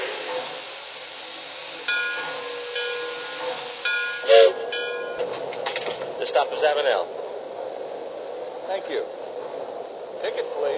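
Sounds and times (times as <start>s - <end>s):
loud tonal bursts: 0.0s - 5.4s
Amtrak passenger train rumbling and hissing while running: 0.0s - 10.7s
speech: 6.5s - 7.2s, 8.7s - 9.2s, 10.2s - 10.7s.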